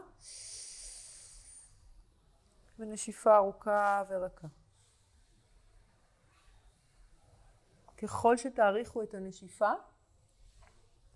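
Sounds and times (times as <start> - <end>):
strong inhale through left nostril: 0.2 - 1.8
speech: 2.8 - 4.6, 8.0 - 9.9.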